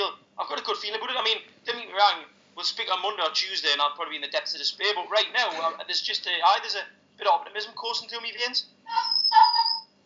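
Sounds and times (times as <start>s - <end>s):
speech: 0.1s - 9.4s
dog whining: 8.9s - 9.9s.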